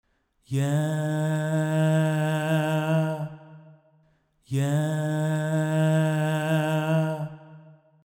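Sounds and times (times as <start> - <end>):
unpitched vocal: 0.5 - 3.4, 4.5 - 7.5.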